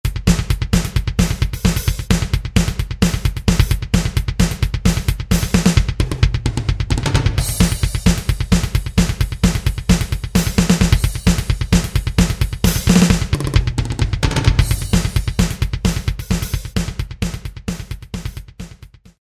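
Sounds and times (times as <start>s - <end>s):
drum machine preset jazz rock pattern: 0.0s - 19.2s.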